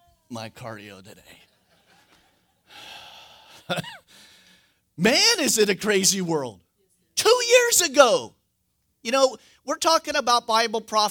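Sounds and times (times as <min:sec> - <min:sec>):
speech: 0:00.3 - 0:01.5, 0:03.7 - 0:04.3, 0:05.0 - 0:06.6, 0:07.2 - 0:08.4, 0:09.0 - 0:11.0
laughter: 0:01.4 - 0:02.8
deep breath in: 0:02.7 - 0:04.8.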